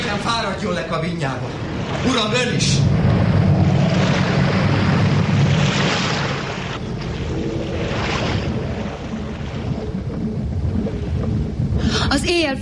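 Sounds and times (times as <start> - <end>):
sea waves crashing around a ship: 0.0 - 12.2
storm wind roaring at sea around a ship: 0.0 - 12.6
speech: 0.2 - 3.4, 12.3 - 12.6.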